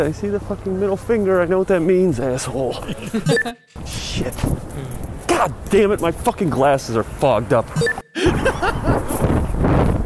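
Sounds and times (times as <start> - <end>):
speech: 0.0 - 9.3
laughter: 2.5 - 3.6, 7.8 - 9.1
strong wind buffeting the microphone: 3.8 - 6.4, 8.3 - 10.0.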